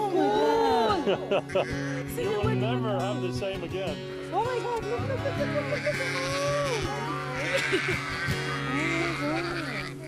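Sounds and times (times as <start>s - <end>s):
laughter: 0.0s - 2.0s, 4.9s - 9.6s
several sheep bleating: 0.0s - 2.8s, 5.0s - 10.0s
speech: 1.0s - 9.9s.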